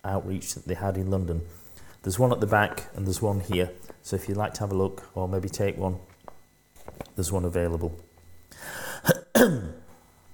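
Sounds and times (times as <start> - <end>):
speech: 0.0 - 6.1, 6.9 - 9.6
sharp coughs: 9.0 - 9.9.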